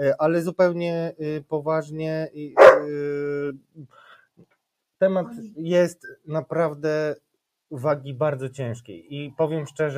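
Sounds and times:
speech: 0:00.0 - 0:09.9
dog bark trailing into a tonal whine: 0:02.6 - 0:03.0.

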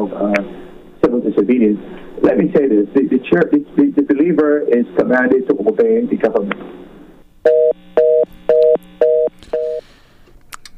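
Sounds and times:
speech: 0:01.6 - 0:06.8
telephone tone beeps after a dropped call: 0:07.5 - 0:09.8.

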